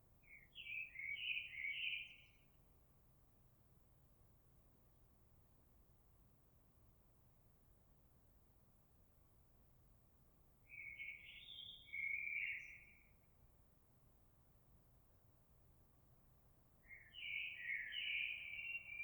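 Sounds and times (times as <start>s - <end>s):
blackbird: 0.2s - 2.4s, 10.7s - 13.1s, 16.8s - 19.0s.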